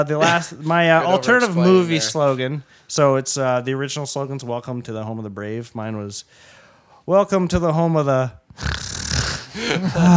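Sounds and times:
speech: 0.0 - 8.8, 9.6 - 10.1
person imitating snoring with their voice: 8.5 - 10.1.

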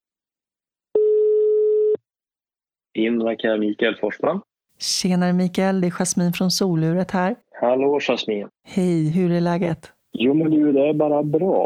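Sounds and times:
telephone ringback tone while placing a call: 1.0 - 2.0
speech: 3.0 - 11.6.

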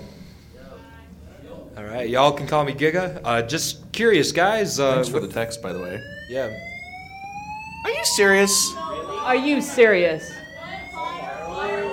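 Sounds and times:
speech: 1.8 - 6.7, 7.8 - 10.4
building fire alarm blaring with piercing electronic tone: 4.9 - 11.9.

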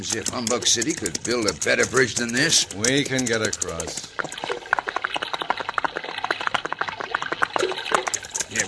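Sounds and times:
speech: 0.0 - 4.5
rushing creek water under a bridge: 4.0 - 8.6.

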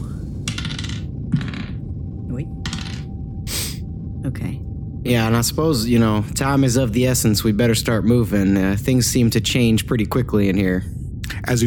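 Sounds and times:
dice clattering across a hard tabletop during a tabletop game: 0.5 - 1.8, 2.7 - 3.0
speech: 2.4 - 2.6, 4.2 - 11.6.

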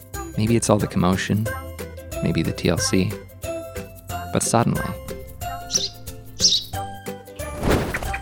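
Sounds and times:
speech: 0.4 - 1.6, 2.2 - 3.3, 4.3 - 5.0
baby bird in a child's palm chirping: 4.8 - 7.0
steady tonal background: 4.8 - 7.2
baby bird wings rustling and fluttering as it takes flight: 5.0 - 8.1.

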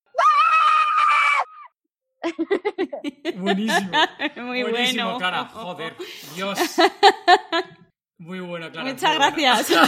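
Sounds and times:
woman's loud piercing scream: 0.1 - 1.8
laughter: 2.2 - 5.0, 9.6 - 9.8
speech: 2.3 - 9.8.

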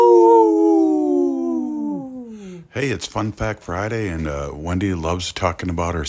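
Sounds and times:
wolf howling: 0.0 - 2.3
speech: 2.8 - 6.0.

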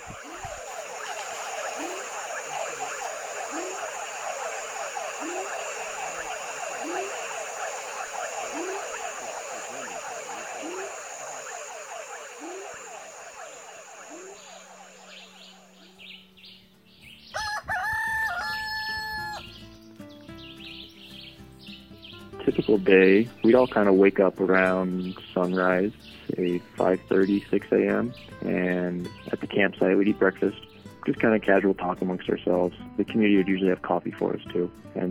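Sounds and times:
dense chorus of rapid chirping calls at night in the jungle at a campsite: 0.0 - 22.8
speech: 22.8 - 35.0.

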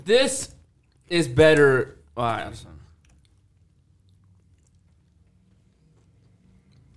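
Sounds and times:
speech: 0.0 - 2.8
chewing a crunchy snack during a potato chip versus pretzel taste test: 0.6 - 1.1, 2.6 - 6.9.

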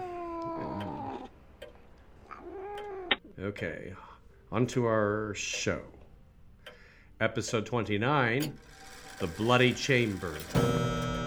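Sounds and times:
cat meowing: 0.0 - 1.3, 2.3 - 3.2
speech: 3.4 - 6.0, 7.2 - 11.0.

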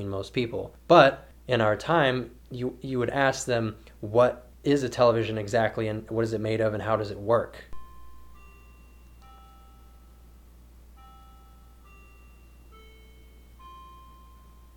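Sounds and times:
speech: 0.0 - 7.7
low hum: 0.0 - 14.7
clock chiming the hour with bell-like notes: 7.8 - 14.7.

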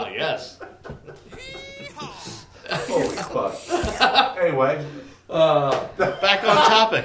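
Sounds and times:
speech: 0.2 - 0.7, 2.7 - 7.0
laughter: 0.6 - 4.4
goat bleating: 1.3 - 4.0
voice-like murmur: 1.3 - 4.0.

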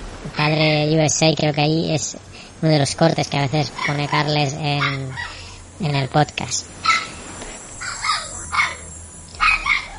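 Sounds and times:
speech: 0.4 - 7.0
dog barking in short sharp yaps: 4.8 - 5.4, 6.8 - 7.2, 7.8 - 9.9.

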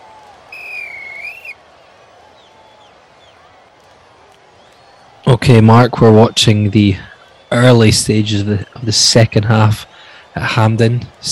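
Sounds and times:
steady low murmur: 0.0 - 11.2
referee's whistle blast signalling halftime in a football match: 0.5 - 1.6
speech: 5.3 - 11.2.

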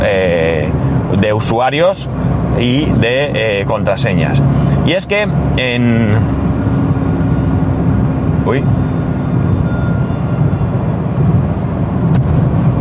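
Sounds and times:
engine and road rumble: 0.0 - 12.7
speech: 1.3 - 6.3, 8.5 - 8.8
siren-like whoop: 8.9 - 10.8.

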